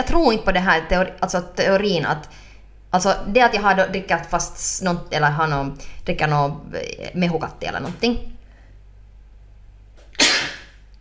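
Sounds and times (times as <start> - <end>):
speech: 0.0 - 8.4
sneeze: 10.1 - 10.8.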